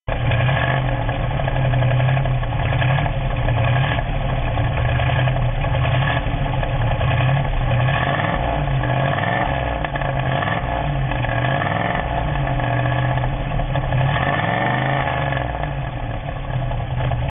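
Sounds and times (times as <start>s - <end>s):
Camaro exhaust system: 0.1s - 17.3s.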